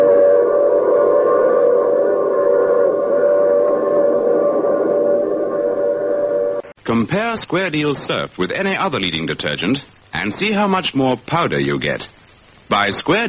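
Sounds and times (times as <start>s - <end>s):
train whistle: 0.0s - 6.8s
speech: 7.0s - 13.2s.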